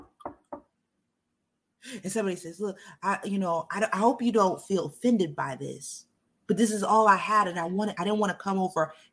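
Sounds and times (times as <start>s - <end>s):
firm knocks on a door with hollow thud: 0.0s - 0.7s
speech: 1.9s - 9.1s.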